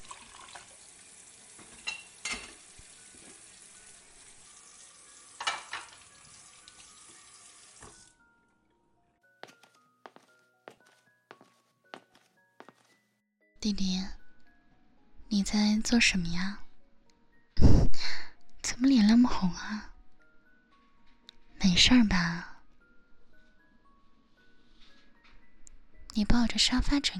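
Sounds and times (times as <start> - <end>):
steady stream of running tap water: 0.0 - 8.2
dishes clattering while being washed: 1.6 - 2.7, 5.4 - 6.1
plates and bowls clinking: 1.6 - 3.4, 5.4 - 6.2
speech: 13.6 - 14.2, 15.4 - 16.6, 19.3 - 19.9, 21.8 - 22.5, 26.2 - 27.1.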